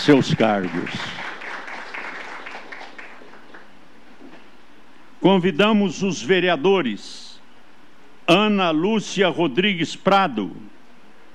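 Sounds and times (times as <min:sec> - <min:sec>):
speech: 0:00.0 - 0:01.2, 0:05.2 - 0:07.2, 0:08.3 - 0:10.7
applause of many hands for an outgoing council board: 0:00.0 - 0:03.8.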